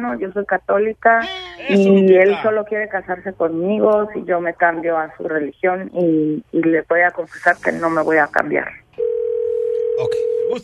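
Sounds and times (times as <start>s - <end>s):
speech: 0.0s - 8.8s, 10.0s - 10.6s
electronic telephone ring tone on the line: 9.0s - 10.6s.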